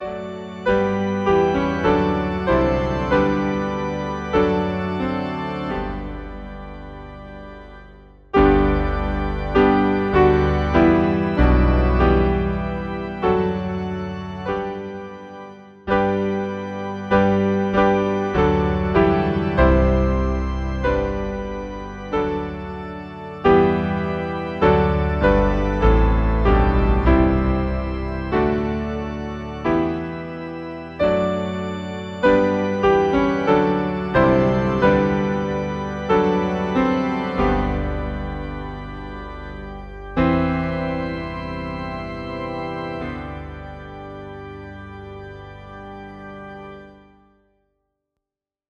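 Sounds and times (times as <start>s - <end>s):
piano: 0.0s - 47.5s
organ: 0.0s - 47.6s.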